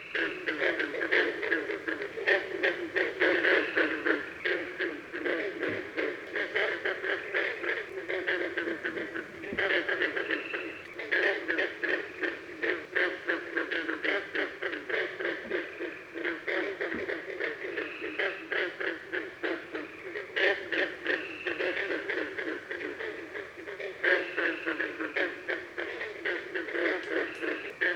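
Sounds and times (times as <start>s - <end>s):
green frog calls: 0.0s - 27.9s.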